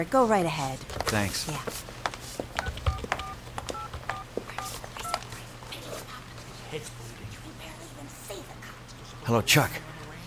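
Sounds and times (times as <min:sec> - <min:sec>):
speech: 0:00.0 - 0:02.0, 0:06.7 - 0:07.0, 0:09.3 - 0:09.8
telephone keypad tones dialing at a truck stop in Arizona: 0:02.6 - 0:05.2.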